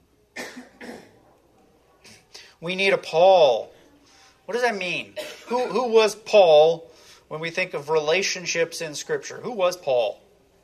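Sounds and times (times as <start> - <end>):
person coughing to clear a frog in the throat: 0.4 - 1.1, 5.2 - 5.8
speech: 2.6 - 3.8, 4.5 - 10.2.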